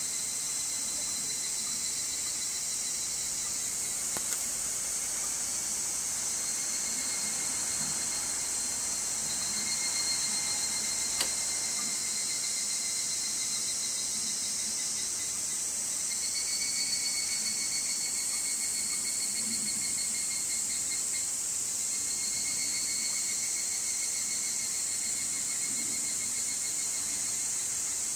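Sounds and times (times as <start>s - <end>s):
evening cicada drone: 0.0s - 28.1s
sharp click: 11.2s - 11.5s.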